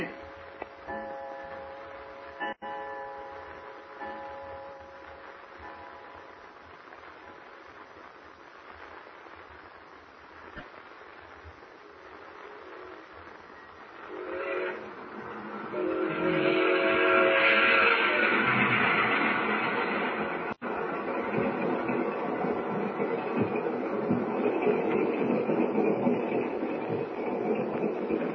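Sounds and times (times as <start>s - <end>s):
train rumbling steadily along: 0.0s - 7.8s, 11.5s - 28.3s
train whistle blasts: 14.1s - 19.7s.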